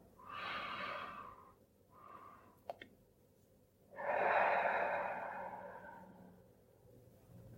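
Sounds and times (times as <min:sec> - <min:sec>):
person breathing deeply during a mindful breathing exercise: 0:00.0 - 0:02.6, 0:03.9 - 0:06.5.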